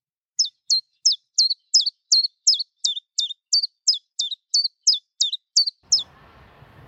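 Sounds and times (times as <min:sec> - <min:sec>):
chiffchaff singing: 0:00.4 - 0:06.1
low mechanical rumble: 0:05.9 - 0:06.8.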